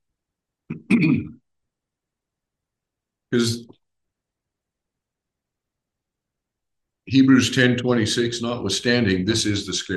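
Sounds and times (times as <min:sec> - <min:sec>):
person clearing throat: 0:00.7 - 0:01.4
speech: 0:00.7 - 0:01.4, 0:03.3 - 0:03.8, 0:07.1 - 0:09.9.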